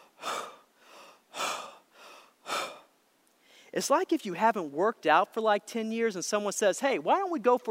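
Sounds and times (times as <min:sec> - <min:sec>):
heavy deliberate breathing in and out: 0:00.0 - 0:03.8
speech: 0:03.8 - 0:07.7.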